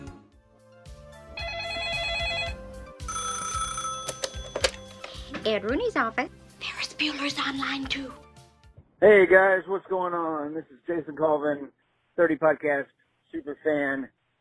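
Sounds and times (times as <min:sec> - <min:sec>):
telephone ringing in a voicemail sound effect: 0:01.4 - 0:05.3
speech: 0:05.6 - 0:06.4, 0:07.0 - 0:08.2, 0:09.0 - 0:14.2.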